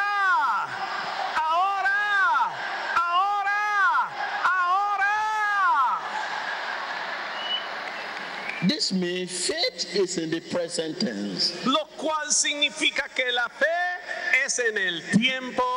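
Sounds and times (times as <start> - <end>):
audience shouting and cheering in response to a preacher: 0.0 - 9.0
speech: 8.6 - 13.8, 14.5 - 15.7.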